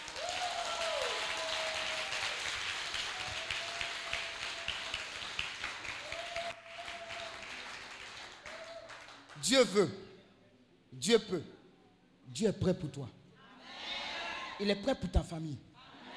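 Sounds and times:
church congregation applauding: 0:00.0 - 0:09.6
speech: 0:09.4 - 0:10.0, 0:11.0 - 0:11.6, 0:12.3 - 0:13.2, 0:14.6 - 0:15.7.

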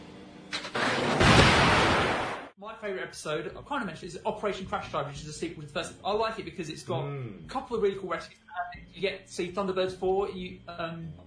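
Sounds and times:
missile firing sound effect: 0:00.7 - 0:02.5
speech: 0:02.7 - 0:11.2.

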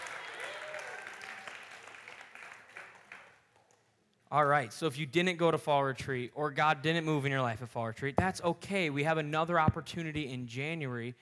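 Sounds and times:
crowd applause: 0:00.0 - 0:03.4
speech: 0:04.3 - 0:11.2.

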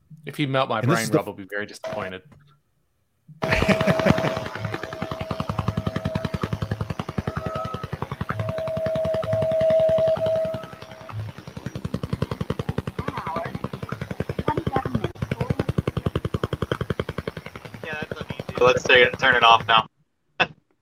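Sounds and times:
speech: 0:00.2 - 0:02.5, 0:03.4 - 0:04.4, 0:18.6 - 0:19.9
laughter: 0:00.8 - 0:01.2, 0:03.4 - 0:05.2
Russian Woodpecker over-the-horizon radar signal clicking pulses: 0:01.8 - 0:02.2, 0:03.4 - 0:19.9
faint whistling tones: 0:04.1 - 0:11.9.

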